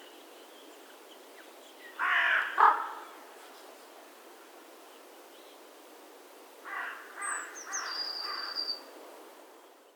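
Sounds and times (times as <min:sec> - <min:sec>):
carrion crow Corvus corone cawing: 0:02.0 - 0:03.0, 0:06.7 - 0:07.3.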